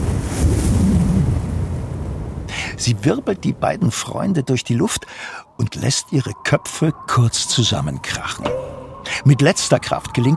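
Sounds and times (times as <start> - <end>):
strong gust of wind sweeping across a meadow: 0.0 - 2.5
speech: 2.8 - 10.3.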